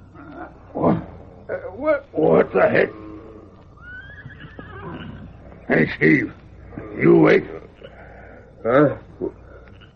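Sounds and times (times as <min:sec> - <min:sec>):
speech: 0:01.8 - 0:03.0, 0:05.7 - 0:06.4, 0:07.0 - 0:07.7, 0:08.6 - 0:09.4
distant quavering horse whinny at a camp: 0:02.8 - 0:05.6.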